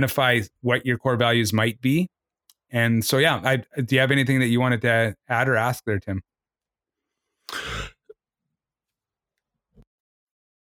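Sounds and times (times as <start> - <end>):
speech: 0.0 - 6.3
faint low grunt: 7.5 - 8.1
loud raspy throat clearing: 7.5 - 8.1.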